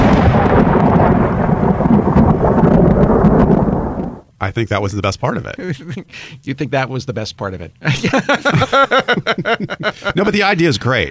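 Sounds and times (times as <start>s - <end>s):
thunder rumbling: 0.0s - 4.3s
faint rain hiss: 0.0s - 11.0s
speech: 4.5s - 11.0s
laughter: 5.6s - 6.2s, 7.8s - 10.7s.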